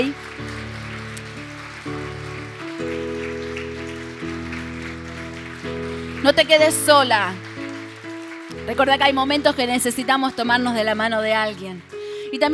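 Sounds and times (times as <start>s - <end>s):
speech: 0.0s - 0.2s, 6.3s - 7.5s, 8.7s - 12.5s
church audience clapping in Mendoza, Argentina: 0.0s - 12.5s
sustained keyboard chords: 0.0s - 12.5s.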